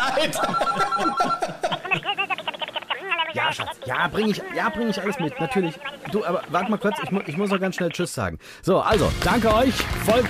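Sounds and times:
telephone ringing with an incoming call: 0.0 - 1.6
laughing talk: 0.0 - 7.9
speech: 0.2 - 2.2, 3.4 - 10.2.

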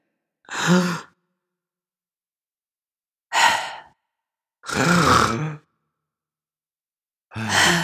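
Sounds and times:
voice imitating heavy drawn-out breathing while sleeping in bed: 4.7 - 5.6, 7.4 - 7.8.

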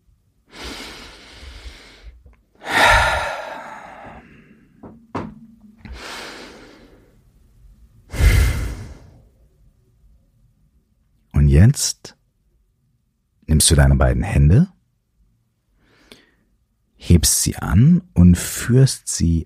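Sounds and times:
deep breaths in and out during a guided relaxation exercise: 0.4 - 4.8, 5.8 - 7.3, 8.1 - 9.4, 15.7 - 16.7
speech: 11.6 - 12.2, 13.6 - 14.7, 17.0 - 19.4.

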